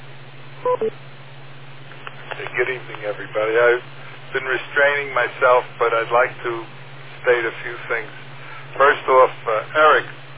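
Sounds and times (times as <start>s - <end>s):
low steady hum: 0.0s - 10.3s
electronic timing beeps on an amateur radio net: 0.6s - 1.0s
speech: 0.6s - 1.2s, 2.5s - 10.2s.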